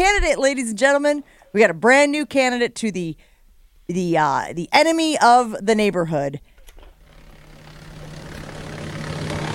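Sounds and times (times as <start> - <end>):
speech: 0.3 - 3.3, 3.9 - 6.5
steady mechanical engine drone with a low hum from a wood chipper: 6.9 - 9.5.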